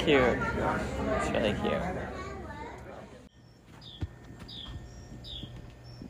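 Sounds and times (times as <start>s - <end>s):
speech: 0.0s - 2.3s
bird chirping outside a house: 3.3s - 6.0s.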